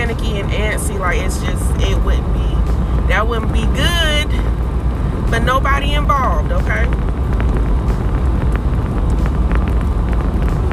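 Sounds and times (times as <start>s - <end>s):
faint road noise: 0.0s - 10.7s
wind roar buffeting the microphone: 0.0s - 10.7s
speech: 0.4s - 4.5s, 5.3s - 7.7s.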